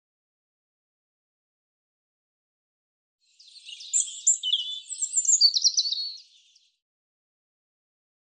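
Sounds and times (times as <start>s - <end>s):
European robin singing: 3.3s - 6.8s.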